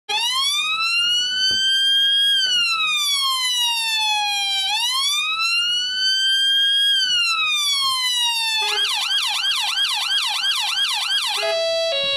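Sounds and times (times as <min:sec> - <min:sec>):
police sirens: 0:00.1 - 0:12.1.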